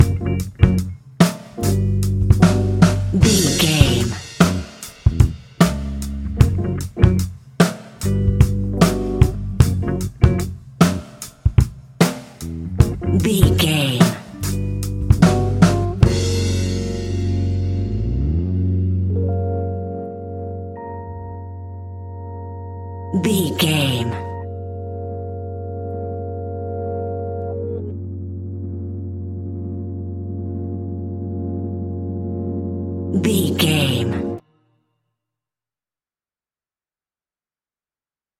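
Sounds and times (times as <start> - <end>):
electro groove hip hop beat: 0.0 - 7.3, 8.0 - 11.0, 12.4 - 18.4, 19.1 - 34.4.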